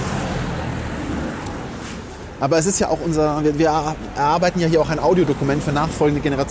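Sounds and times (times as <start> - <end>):
car driving past outside: 0.0 - 2.2
speech: 2.4 - 6.5.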